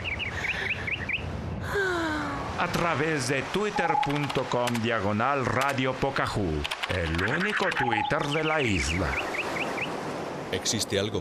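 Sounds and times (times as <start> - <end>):
birds trilling: 0.0 - 1.3, 7.0 - 10.2
speech: 2.6 - 9.3, 10.5 - 11.1.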